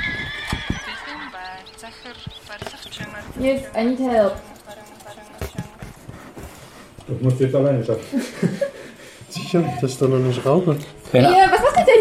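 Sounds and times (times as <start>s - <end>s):
horse whinnies and neighs in strategy game sound effects: 0.0s - 1.2s
laughter: 0.5s - 2.8s, 7.9s - 9.6s
speech: 3.2s - 4.5s, 7.1s - 8.8s, 9.5s - 11.9s.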